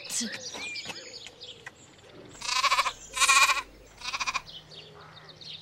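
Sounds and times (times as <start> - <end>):
goat bleating: 2.4 - 4.5.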